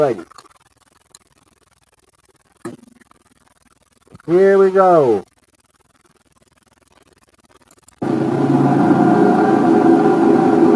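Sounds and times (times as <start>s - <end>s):
speech: 0.0s - 0.4s, 4.3s - 5.3s
heavy trailer truck engine rumble at an underground food storage facility: 8.0s - 10.7s.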